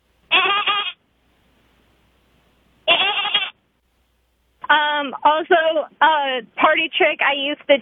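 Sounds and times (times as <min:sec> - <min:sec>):
person imitating goat bleats: 0:00.3 - 0:01.0, 0:02.9 - 0:03.6
speech: 0:05.1 - 0:07.8.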